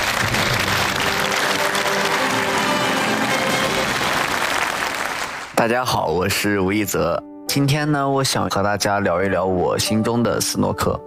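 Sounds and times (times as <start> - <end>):
large audience applause: 0.0 - 5.6
speech: 5.6 - 11.0.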